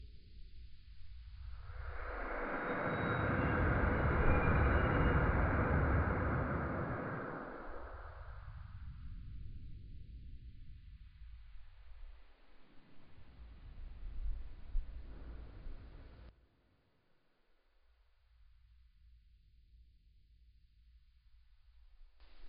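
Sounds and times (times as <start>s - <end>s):
ambient landscape sound: 0.1s - 16.3s.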